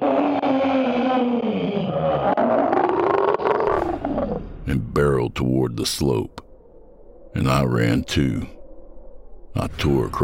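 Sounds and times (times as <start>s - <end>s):
synthetic monster roar with electronic growl: 0.0s - 4.2s
speech: 4.7s - 6.4s, 7.3s - 8.6s, 9.6s - 10.2s.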